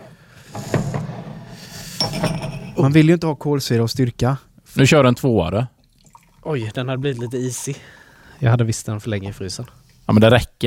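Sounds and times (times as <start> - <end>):
drinking glasses clinking and knocking as they are set out: 2.0 - 2.8
speech: 2.1 - 5.8, 6.4 - 10.6.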